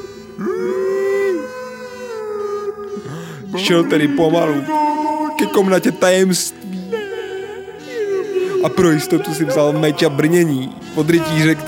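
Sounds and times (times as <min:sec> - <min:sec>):
fainter wavering creature cry: 0:00.0 - 0:05.6, 0:06.8 - 0:10.4
speech: 0:00.4 - 0:00.8, 0:03.6 - 0:04.8, 0:05.4 - 0:06.7, 0:08.6 - 0:11.6
long eerie creature howl from a chamber: 0:00.4 - 0:02.9.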